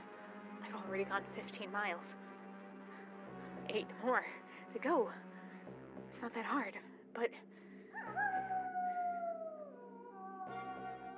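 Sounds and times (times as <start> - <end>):
speech: 0.9 - 2.3, 3.7 - 5.3, 6.1 - 8.2
wolf howling: 8.0 - 11.1.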